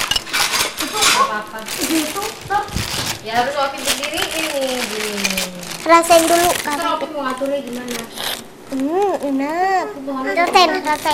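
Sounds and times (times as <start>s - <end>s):
metal spoon clinking and scraping against a cooking pot: 0.0s - 1.4s
speech: 1.4s - 11.1s.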